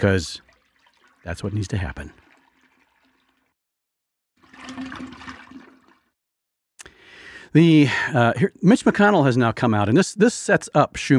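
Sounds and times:
speech: 0.0s - 0.4s, 1.2s - 2.2s, 7.5s - 11.1s
toilet flushing with a rush of swirling water: 0.0s - 3.5s, 4.4s - 6.1s.

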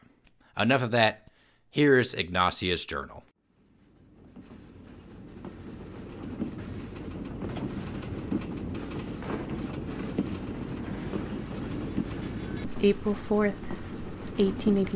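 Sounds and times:
speech: 0.6s - 3.3s, 12.8s - 13.8s, 14.4s - 14.9s
train to Boston rumbling along rails heard from inside the carriage: 3.8s - 14.9s
train wheels clacking over track joints: 4.0s - 14.9s.

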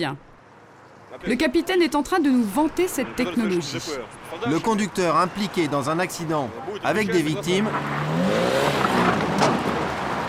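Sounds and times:
speech: 0.0s - 0.3s, 1.1s - 8.5s
Lada car speeding off fast: 4.0s - 10.2s.

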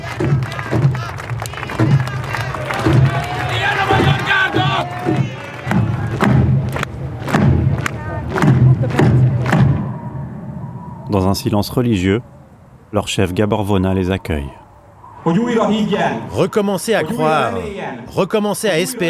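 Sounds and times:
large crowd applauding and calling out in a square: 0.0s - 10.1s
speech: 11.2s - 14.6s, 15.2s - 19.0s.

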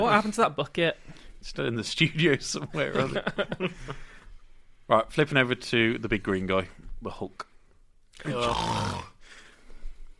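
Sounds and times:
speech: 0.0s - 4.1s, 4.9s - 7.5s, 8.2s - 9.1s
laughter: 2.2s - 4.1s
person snoring: 8.2s - 9.2s
breathy exhale: 9.2s - 10.0s.

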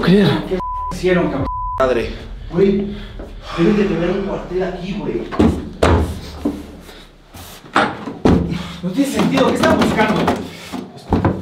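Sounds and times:
speech: 0.1s - 5.6s, 8.8s - 10.5s
door shoved shut with a heavy thud: 5.0s - 6.4s.

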